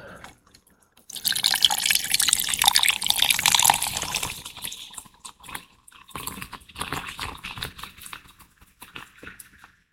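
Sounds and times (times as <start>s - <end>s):
cola pouring over silver rum with lime for a Cuba Libre, fizzing: 1.0s - 7.8s.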